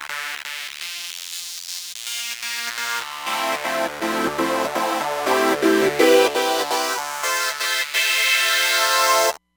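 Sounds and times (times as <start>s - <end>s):
high-pass filter sweep on a synthesizer: 2.8s - 9.4s.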